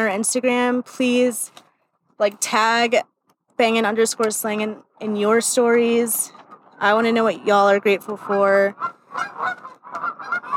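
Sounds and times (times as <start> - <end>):
speech: 0.0 - 1.6, 2.2 - 10.5
geese honking outdoors: 6.8 - 10.5.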